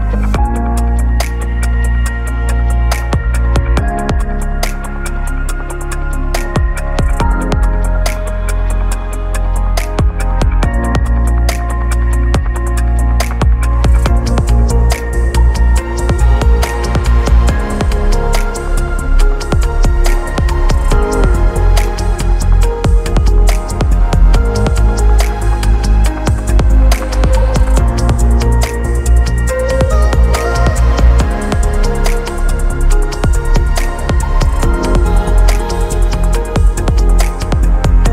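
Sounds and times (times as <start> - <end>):
ambient beat: 0.1 - 38.1.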